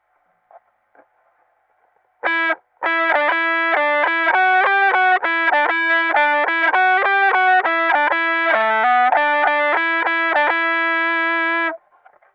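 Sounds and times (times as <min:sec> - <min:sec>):
electric guitar: 0:02.2 - 0:11.8.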